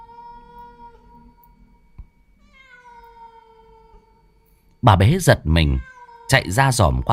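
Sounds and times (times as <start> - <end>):
cat wailing mournfully in a yard: 0.0 - 1.4, 2.4 - 4.2, 5.6 - 6.6
speech: 4.8 - 7.1.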